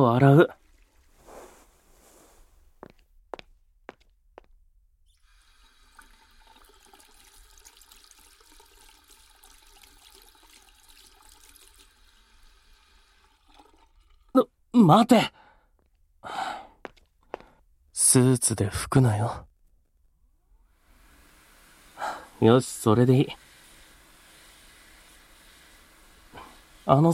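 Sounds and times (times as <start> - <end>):
speech: 0.0 - 0.6, 14.8 - 15.4, 18.0 - 19.5, 22.4 - 23.4, 26.9 - 27.1
toilet being flushed: 5.2 - 14.4, 20.7 - 27.1.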